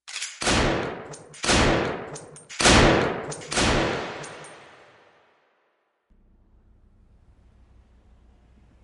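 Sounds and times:
loud gunshots: 0:00.4 - 0:04.9
booming echo of gunshots: 0:00.5 - 0:05.1.

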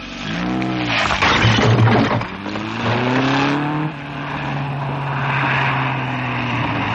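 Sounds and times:
car engine revving: 0:00.0 - 0:06.9
harsh crashing noise of a car crashing into a garage door: 0:00.9 - 0:02.5.

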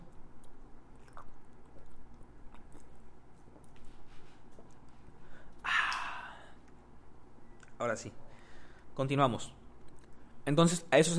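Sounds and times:
quiet noise: 0:00.0 - 0:11.1
person drinking water with gulps and swallowing: 0:00.9 - 0:03.1
speech: 0:07.9 - 0:08.2, 0:09.0 - 0:09.6, 0:10.4 - 0:11.1.

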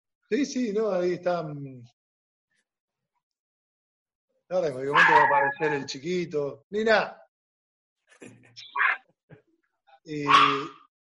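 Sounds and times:
speech: 0:00.3 - 0:02.0, 0:04.5 - 0:07.2, 0:08.2 - 0:09.0, 0:10.1 - 0:10.8
dog drawn-out bark-like yelp: 0:04.9 - 0:05.9, 0:08.6 - 0:09.0, 0:10.2 - 0:10.9.

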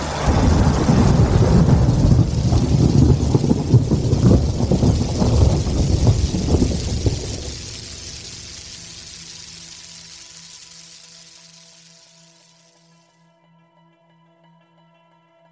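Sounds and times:
deep rolling thunder: 0:00.0 - 0:09.2
heavy rainstorm pouring down: 0:00.0 - 0:12.0.

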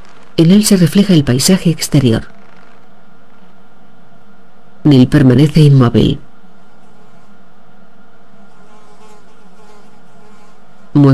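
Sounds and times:
speech: 0:00.4 - 0:02.4, 0:04.8 - 0:06.2
housefly buzzing on an aircraft control panel: 0:06.5 - 0:07.6, 0:08.2 - 0:11.1.

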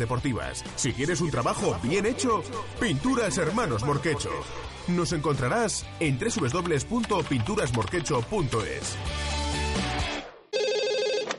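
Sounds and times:
speech: 0:00.0 - 0:09.9
telephone ringing with a warbling electronic trill: 0:10.6 - 0:11.3.

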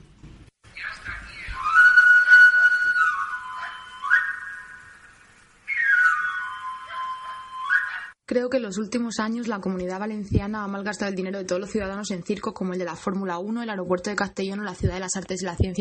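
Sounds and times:
knife sharpener's pan-pipe whistle: 0:01.3 - 0:08.2
speech: 0:08.4 - 0:15.7.

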